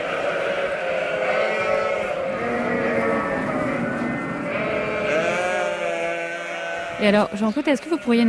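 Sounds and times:
flock of sheep bleating, rams and ewes: 0:00.0 - 0:08.2
speech: 0:07.0 - 0:08.2.

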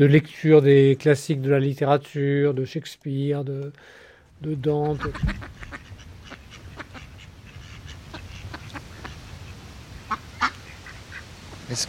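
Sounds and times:
speech: 0:00.0 - 0:05.8, 0:11.7 - 0:11.8
ducks quacking on a pond: 0:04.7 - 0:11.8.

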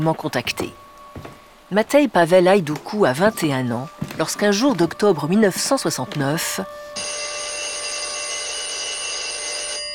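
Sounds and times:
speech: 0:00.0 - 0:07.2
old telephone bell ringing: 0:07.0 - 0:09.9.

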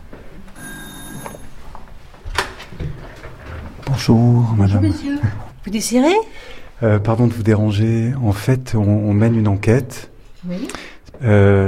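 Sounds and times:
doorbell ringing at an apartment door: 0:00.6 - 0:01.6
speech: 0:04.0 - 0:11.6.

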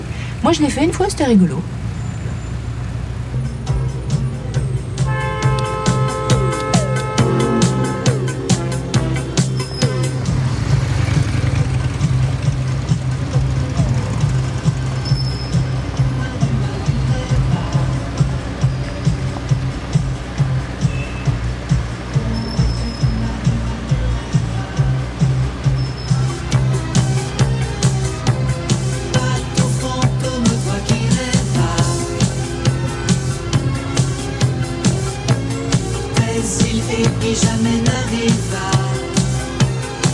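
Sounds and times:
car engine humming while driving: 0:00.0 - 0:40.1
road noise: 0:00.0 - 0:40.1
speech: 0:00.5 - 0:01.8.

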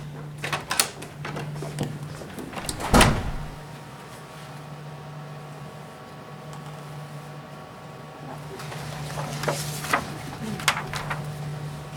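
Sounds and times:
steady low electrical hum: 0:00.0 - 0:11.9
door latch clicking and rattling: 0:02.6 - 0:03.6.

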